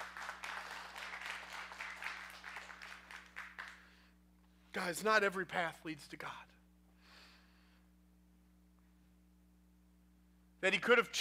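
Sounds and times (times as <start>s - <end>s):
congregation clapping: 0.0s - 4.0s
low electrical hum: 0.0s - 11.1s
speech: 4.8s - 6.5s, 10.6s - 11.1s.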